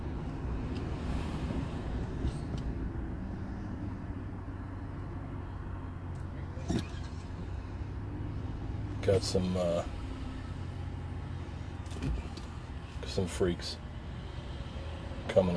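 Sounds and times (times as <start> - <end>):
light car traffic in a store parking lot at dusk: 0.0 - 15.5
speech: 9.1 - 10.0, 13.2 - 13.8, 15.4 - 15.5.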